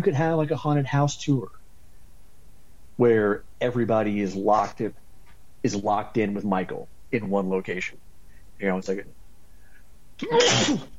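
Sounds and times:
speech: 0:00.0 - 0:01.6, 0:03.0 - 0:05.0, 0:05.6 - 0:09.2, 0:10.2 - 0:10.9
person sneezing: 0:10.2 - 0:10.9.

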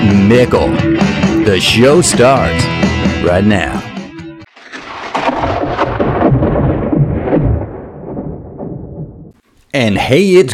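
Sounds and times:
speech: 0:00.3 - 0:00.9, 0:01.5 - 0:03.9, 0:09.8 - 0:10.5
thunder from a lightning strike: 0:04.6 - 0:09.4.

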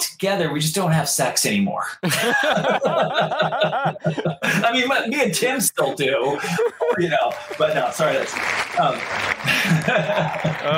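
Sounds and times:
speech: 0:00.2 - 0:10.7
laughter: 0:02.0 - 0:05.0, 0:05.8 - 0:10.7
small group applauding: 0:06.5 - 0:10.7.

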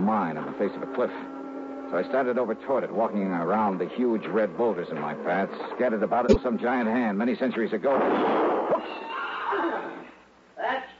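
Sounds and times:
speech: 0:00.1 - 0:10.0, 0:10.6 - 0:10.9
horse whinnying: 0:08.7 - 0:10.2.

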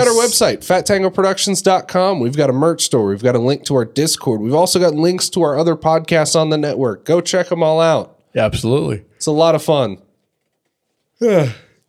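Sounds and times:
speech: 0:00.1 - 0:10.0, 0:11.2 - 0:11.6
person yawning: 0:11.2 - 0:11.8.

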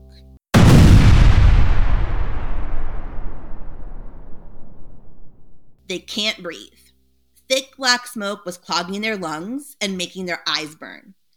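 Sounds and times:
loud explosion with long rumbling decay: 0:00.6 - 0:05.8
speech: 0:05.9 - 0:06.9, 0:07.5 - 0:11.2.

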